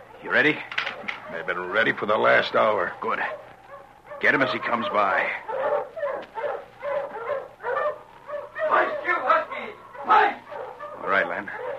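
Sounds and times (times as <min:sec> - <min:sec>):
speech: 0:00.3 - 0:03.5, 0:04.2 - 0:05.6
pack of husky sled dogs yelping, barking and whimpering: 0:00.8 - 0:11.7.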